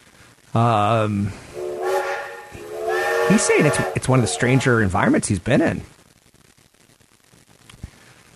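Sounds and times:
speech: 0.5s - 1.5s, 3.3s - 6.0s
big train horn blast: 1.5s - 4.8s.

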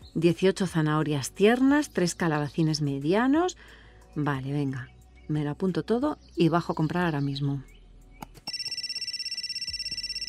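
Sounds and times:
speech: 0.2s - 7.7s
telephone ringing with a trilling electronic tone: 8.5s - 10.2s.

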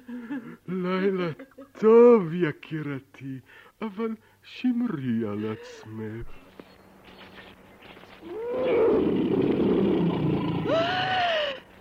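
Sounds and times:
speech: 0.9s - 6.5s
lion roaring: 8.2s - 11.2s.

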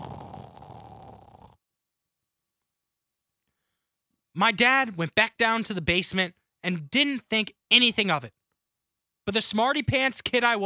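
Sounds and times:
voice imitating a child's snore: 0.0s - 1.6s
speech: 4.4s - 8.4s, 9.3s - 10.6s.

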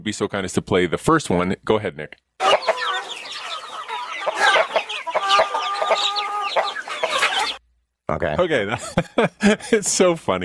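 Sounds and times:
speech: 0.0s - 2.9s, 8.2s - 10.4s
chickens clucking: 2.4s - 7.6s
laughter: 8.7s - 9.9s.

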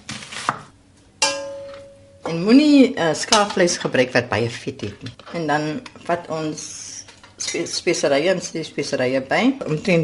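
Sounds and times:
knife slicing food into half-moons: 0.0s - 0.7s
knife chopping on a board: 0.1s - 0.7s
speech: 2.3s - 10.0s.

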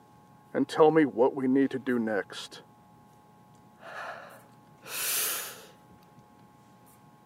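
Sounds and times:
speech: 0.6s - 2.7s
person taking a deep breath: 3.8s - 5.8s.

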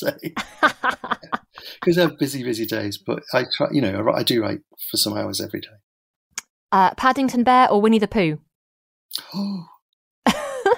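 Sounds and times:
laughter: 0.0s - 2.6s
speech: 0.0s - 5.8s, 6.7s - 8.4s, 9.1s - 9.7s
breathy gasp from a single person: 1.5s - 1.9s, 9.2s - 9.8s.

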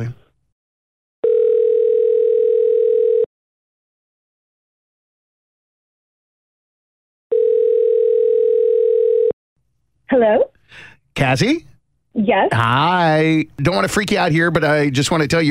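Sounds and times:
speech: 0.0s - 0.2s, 10.2s - 15.5s
ringback tone of an outgoing telephone call: 1.2s - 3.3s, 7.3s - 9.4s.

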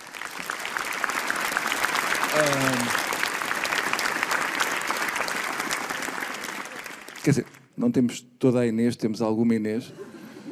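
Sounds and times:
room full of people applauding: 0.0s - 7.7s
speech: 2.4s - 3.0s, 7.3s - 10.1s.

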